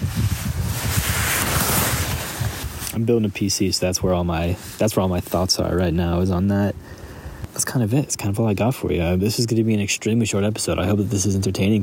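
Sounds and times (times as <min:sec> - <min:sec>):
loud wind roaring and buffeting across a microphone: 0:00.0 - 0:07.5
speech: 0:03.0 - 0:07.0, 0:07.6 - 0:11.8.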